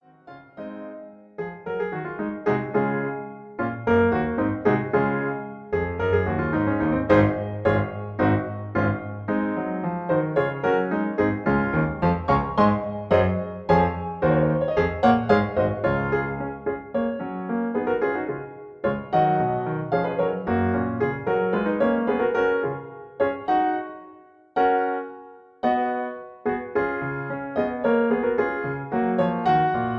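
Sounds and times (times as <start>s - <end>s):
musical accompaniment in F sharp: 0.0s - 29.9s.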